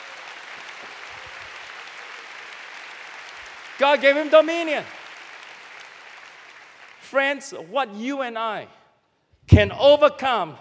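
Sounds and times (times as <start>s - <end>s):
congregation applause: 0.0s - 7.2s
speech: 3.8s - 5.0s, 7.1s - 8.8s, 9.5s - 10.5s.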